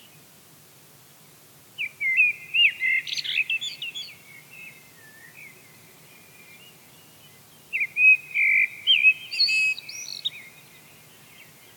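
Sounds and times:
Eurasian blackbird Turdus merula singing: 1.8 - 5.6, 6.2 - 11.7.

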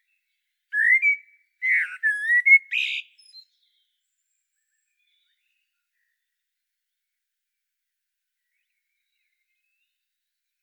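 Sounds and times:
common blackbird Turdus merula singing fluty whistled phrases: 0.8 - 3.7.

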